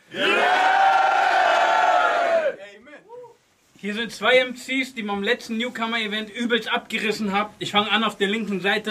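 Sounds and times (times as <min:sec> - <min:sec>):
crowd cheering and shouting: 0:00.1 - 0:02.6
speech: 0:03.8 - 0:08.8.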